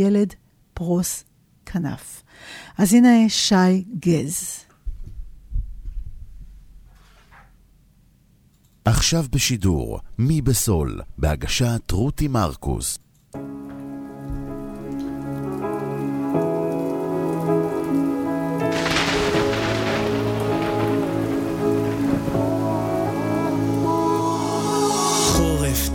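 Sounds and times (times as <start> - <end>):
speech: 0.0 - 4.6, 8.8 - 13.4
sustained musical tones: 13.5 - 25.9
steady rain pattering against window glass: 13.8 - 24.2.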